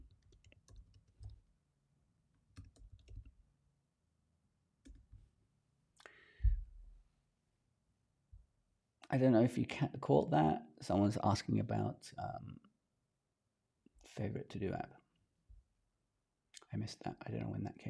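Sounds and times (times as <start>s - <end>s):
typing on a computer keyboard: 0.0s - 1.4s, 2.5s - 3.4s, 4.8s - 5.2s
speech: 9.1s - 12.7s, 14.2s - 15.0s, 16.7s - 17.8s.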